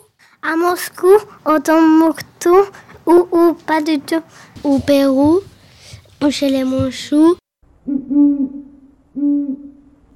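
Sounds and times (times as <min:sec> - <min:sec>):
speech: 0:00.4 - 0:05.5, 0:06.2 - 0:07.4
owl hooting: 0:07.8 - 0:10.1.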